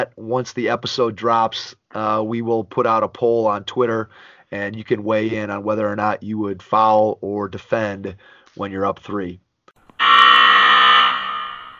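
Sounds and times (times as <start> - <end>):
speech: 0.0 - 9.4
halftime buzzer at a basketball game: 10.0 - 11.7.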